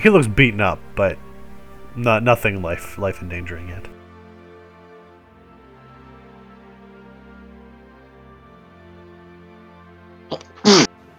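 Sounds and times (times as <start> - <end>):
speech: 0.0 - 1.2, 2.0 - 3.9
faint steady hum: 0.0 - 4.0
sneeze: 10.3 - 10.9.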